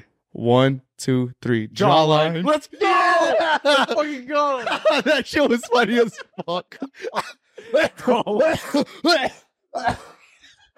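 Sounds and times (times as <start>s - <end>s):
speech: 0.4s - 10.2s
laughter: 2.8s - 9.2s
person coughing into the microphone: 7.0s - 10.4s.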